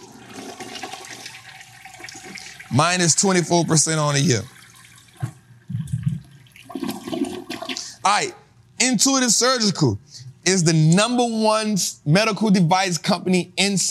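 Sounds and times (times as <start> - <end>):
toilet flushing: 0.0 - 8.0
speech: 2.7 - 4.6, 8.1 - 13.8.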